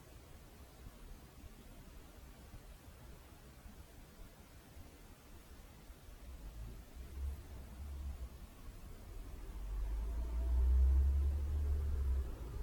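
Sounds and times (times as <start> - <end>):
steady hiss: 0.0 - 12.6
cars passing outside: 7.1 - 12.6.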